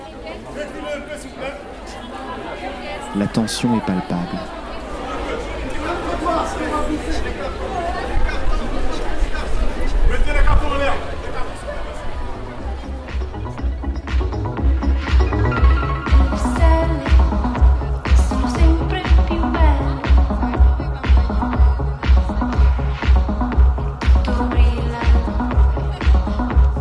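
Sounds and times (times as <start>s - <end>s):
impatient crowd chattering outside fashion show: 0.0s - 26.7s
speech: 3.1s - 4.6s.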